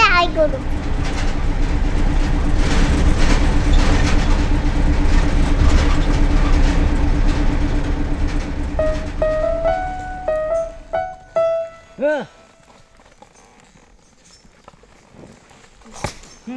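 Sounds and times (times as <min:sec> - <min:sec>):
rattling from a rough bus ride: 0:00.0 - 0:12.5
bus engine droning: 0:00.0 - 0:12.7
speech: 0:00.2 - 0:00.9.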